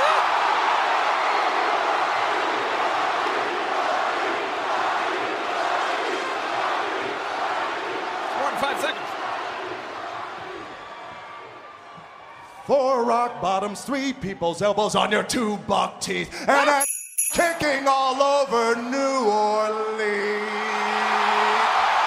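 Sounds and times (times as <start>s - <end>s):
huge arena crowd chanting a wrestler's name: 0.0s - 11.8s, 20.0s - 22.0s
speech: 12.7s - 20.4s.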